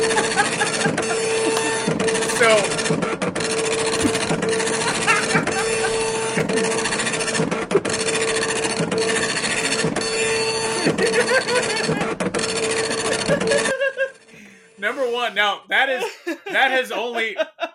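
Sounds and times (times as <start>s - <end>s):
laughter: 0.0s - 1.9s, 4.0s - 7.0s, 9.5s - 12.2s, 12.8s - 14.3s, 15.9s - 17.7s
dot matrix printer printing: 0.0s - 14.3s
speech: 16.8s - 17.5s.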